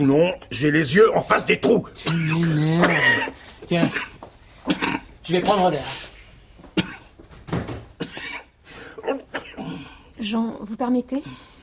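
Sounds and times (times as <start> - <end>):
speech: 0.0 - 4.1, 4.7 - 6.1, 10.2 - 11.5
man coughing in harsh bursts: 2.0 - 5.2, 6.7 - 7.2, 8.0 - 10.0.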